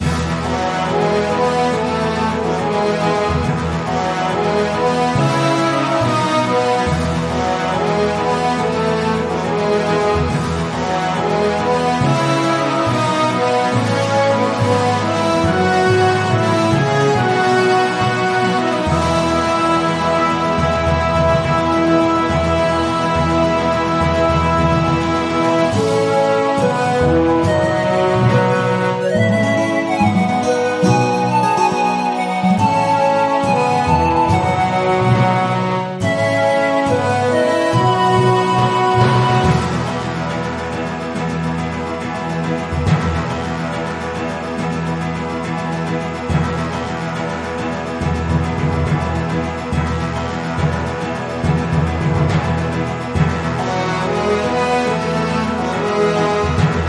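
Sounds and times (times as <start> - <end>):
base soundtrack music: 0.0 - 56.8.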